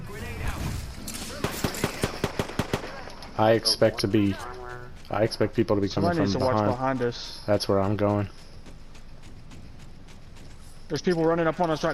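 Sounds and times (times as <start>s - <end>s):
rapid gunfire in a video game shootout: 1.2s - 3.4s
speech: 3.4s - 4.5s, 5.1s - 8.4s, 10.9s - 11.9s.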